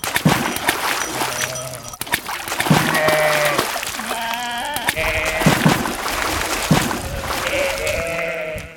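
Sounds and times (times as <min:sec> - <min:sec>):
steady noisy splashy background: 0:00.0 - 0:08.7
flock of sheep bleating: 0:02.7 - 0:05.8, 0:07.1 - 0:08.7.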